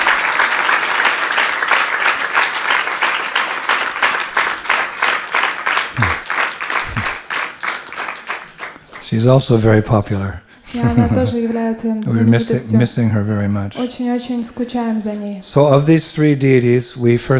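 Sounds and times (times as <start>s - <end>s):
crowd applause: 0.0s - 9.7s
laughter: 6.0s - 6.2s, 6.8s - 7.2s, 10.7s - 11.8s
speech: 9.1s - 17.3s.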